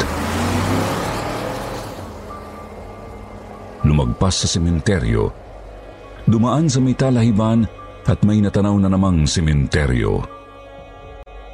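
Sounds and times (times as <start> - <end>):
car engine revving and speeding off: 0.0 - 6.8
speech: 4.0 - 5.5, 6.3 - 10.4.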